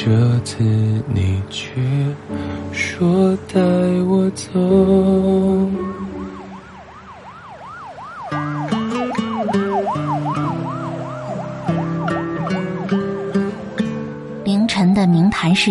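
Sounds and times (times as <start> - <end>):
speech: 0.0 - 6.2, 15.4 - 15.6
ambulance hum: 0.0 - 15.6
ambulance siren wailing on a quiet city street: 5.1 - 15.6.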